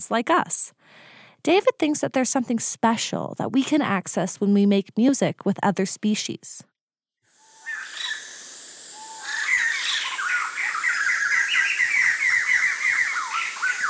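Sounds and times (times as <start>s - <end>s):
speech: 0.0s - 6.7s
bird singing: 7.4s - 13.8s.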